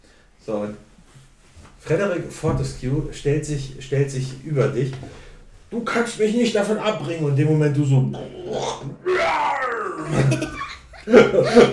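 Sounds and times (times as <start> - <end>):
speech: 0.5 - 0.9, 1.8 - 9.0, 11.1 - 11.7
child imitating a lion's roar: 8.2 - 10.6
laughter: 9.7 - 11.7.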